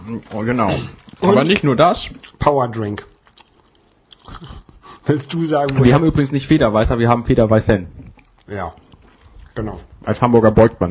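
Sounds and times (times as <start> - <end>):
speech: 0.1 - 3.1, 4.2 - 8.8, 9.6 - 10.8
wet smacking and chewing of someone eating chocolate: 1.0 - 6.4, 8.0 - 9.6.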